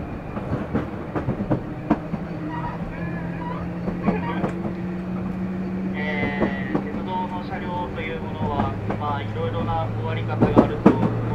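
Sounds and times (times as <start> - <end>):
electric train motor hum: 0.0 - 11.3
high squeal: 2.3 - 4.6.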